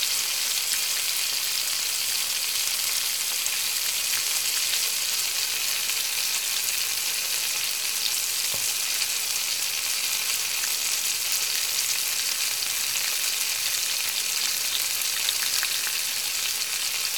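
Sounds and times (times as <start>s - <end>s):
frying: 0.0s - 17.1s.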